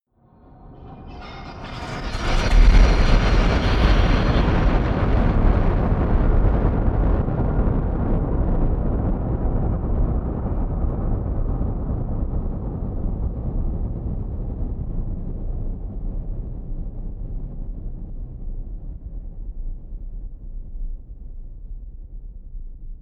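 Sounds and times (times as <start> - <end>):
eerie large explosion rumble: 0.4 - 18.7.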